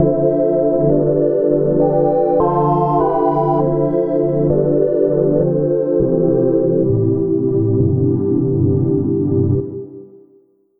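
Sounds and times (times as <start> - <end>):
calm synth pad: 0.0 - 10.1.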